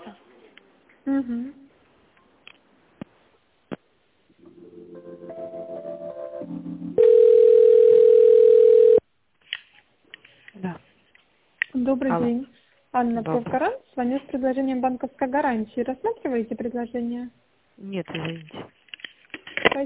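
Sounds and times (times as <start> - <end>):
speech: 1.0 - 1.6, 11.9 - 18.8
pulsing stepped telephone tone sequence rising in pitch during call transfer: 7.0 - 9.0.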